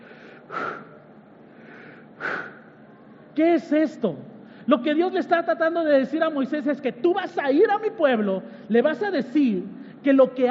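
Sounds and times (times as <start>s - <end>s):
person breathing in and out: 0.0s - 2.9s
speech: 3.4s - 10.4s.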